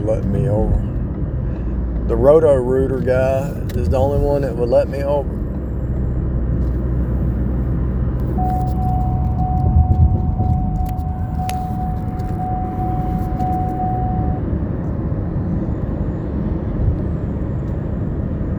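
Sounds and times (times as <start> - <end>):
heavy road rumble of a car at highway speed: 0.0 - 18.5
speech: 0.1 - 1.0, 2.1 - 5.5
thin whine: 8.2 - 16.0.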